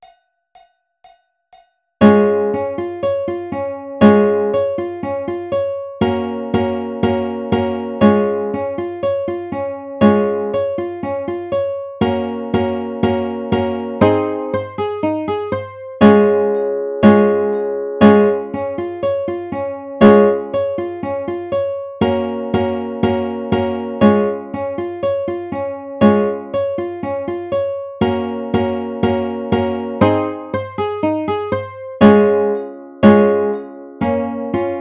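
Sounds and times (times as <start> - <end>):
ukulele arpeggio in Db major: 2.0 - 34.8.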